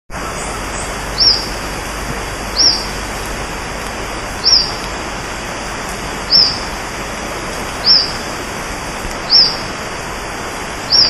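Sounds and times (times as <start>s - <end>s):
constant loud hiss: 0.1s - 11.0s
Social flycatcher calls: 0.2s - 3.2s, 4.4s - 5.0s, 6.2s - 6.8s, 7.7s - 8.4s, 9.1s - 9.9s, 10.8s - 11.0s.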